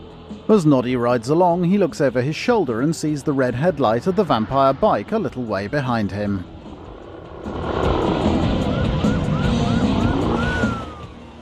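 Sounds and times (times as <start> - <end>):
speech: 0.5 - 6.5
steady rumble of engine and traffic noise: 1.2 - 11.4
police car siren wailing: 8.2 - 11.4.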